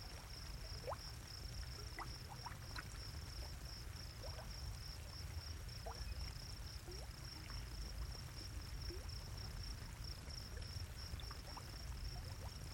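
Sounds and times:
geothermal hot pool bubbling: 0:00.0 - 0:12.7
crickets trilling in a sagebrush desert: 0:00.1 - 0:12.7.

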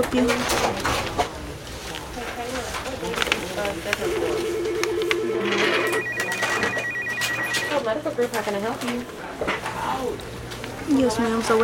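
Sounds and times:
speech: 0:00.0 - 0:01.0, 0:03.0 - 0:04.7, 0:05.4 - 0:06.1, 0:07.8 - 0:11.6
telephones ringing in a busy office: 0:03.9 - 0:08.1.

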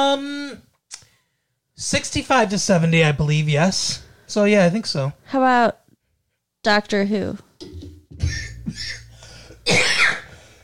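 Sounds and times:
speech: 0:00.0 - 0:00.6, 0:01.8 - 0:05.8, 0:06.6 - 0:07.5
man coughing with a cold: 0:08.2 - 0:10.6.

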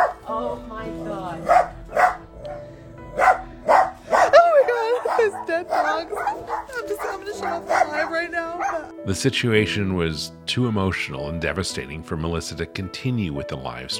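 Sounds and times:
dog barking in an animal hoarder's home during a rescue: 0:00.0 - 0:00.2, 0:01.4 - 0:08.9
dog yipping and whimpering: 0:03.2 - 0:08.9
speech: 0:09.1 - 0:13.9.

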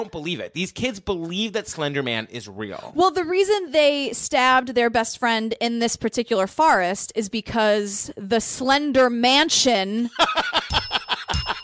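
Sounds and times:
speech: 0:00.0 - 0:10.8
rapid rhythmic bursts of laughter: 0:10.2 - 0:11.6
bell ringing with a thin lingering tone: 0:10.5 - 0:11.6.

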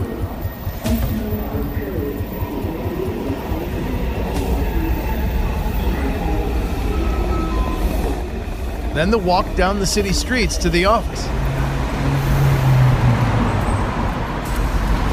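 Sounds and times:
voices: 0:00.0 - 0:11.8
subway train rumbling heard from inside the car: 0:00.0 - 0:15.1
speech: 0:09.0 - 0:11.4.

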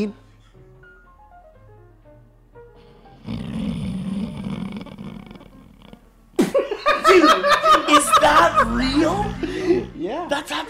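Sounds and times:
speech: 0:00.0 - 0:00.2, 0:07.2 - 0:10.6
furry pet's long low rumbling snore: 0:03.0 - 0:06.1, 0:08.2 - 0:10.1
people laughing: 0:06.4 - 0:10.0.

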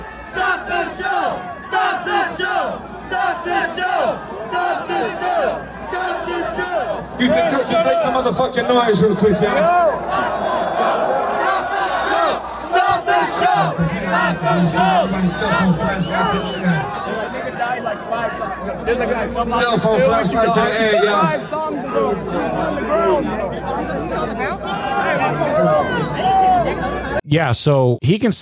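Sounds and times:
large concert crowd chanting in unison: 0:00.2 - 0:07.2, 0:09.6 - 0:18.4
speech: 0:06.4 - 0:10.3, 0:13.5 - 0:17.2, 0:17.9 - 0:28.4.

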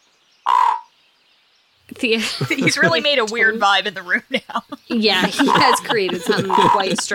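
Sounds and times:
pet raven croaking: 0:00.4 - 0:01.0, 0:05.2 - 0:07.1
speech: 0:01.9 - 0:07.1
laughter: 0:02.1 - 0:03.3, 0:04.2 - 0:07.1.

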